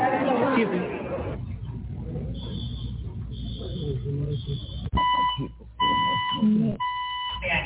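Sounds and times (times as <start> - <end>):
murmur of many voices in a crowded room: 0.0 - 4.7
fire alarm beeping in a crowded cinema: 2.4 - 7.4.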